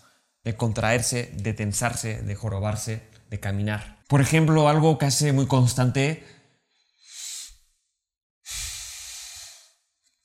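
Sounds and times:
speech: 0.4s - 6.4s
deep controlled breath: 6.7s - 7.7s, 8.5s - 9.8s.

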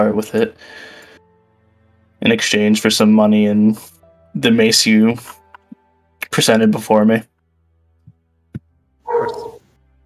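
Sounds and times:
speech: 0.0s - 0.9s, 2.2s - 5.4s, 6.3s - 7.3s
stray dog barking in a hall: 9.1s - 9.6s.

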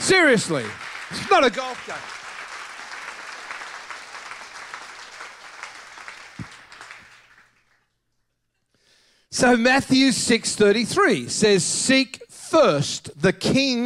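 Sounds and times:
church audience applauding: 0.0s - 7.9s
speech: 0.1s - 2.2s, 9.3s - 13.8s.

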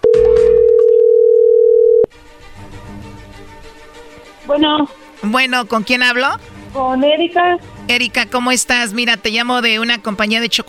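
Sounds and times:
telephone ringing on the line as a call goes through: 0.0s - 2.1s
speech: 4.5s - 10.6s.

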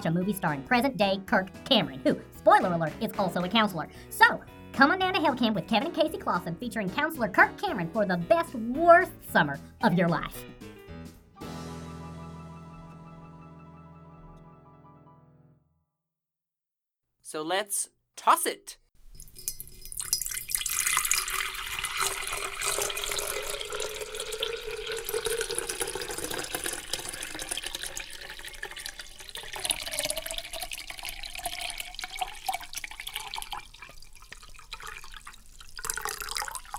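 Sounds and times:
speech: 0.0s - 10.7s, 17.3s - 18.8s
water pouring into pitcher: 19.1s - 36.7s.

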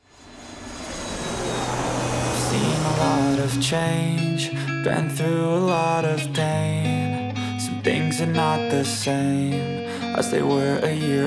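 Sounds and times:
aircraft engine roar at an airport: 0.0s - 4.9s
speech: 2.6s - 7.0s, 7.8s - 11.2s.

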